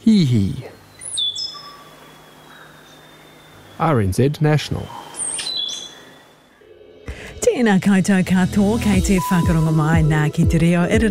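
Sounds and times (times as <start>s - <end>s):
speech: 0.0s - 0.7s, 3.8s - 5.0s, 7.6s - 11.0s
stitchbird call: 1.0s - 3.9s, 4.7s - 6.4s.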